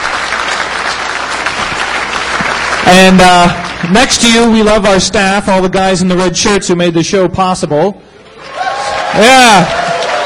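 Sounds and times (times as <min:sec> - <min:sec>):
audience applause at a show's ceremony: 0:00.0 - 0:03.9, 0:08.4 - 0:10.2
speech: 0:02.9 - 0:08.2, 0:09.1 - 0:09.8.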